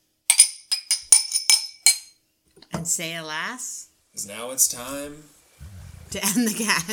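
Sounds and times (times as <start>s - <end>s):
glasses clinking together in a toast: 0.3s - 2.2s
speech: 2.8s - 5.4s, 6.1s - 6.9s.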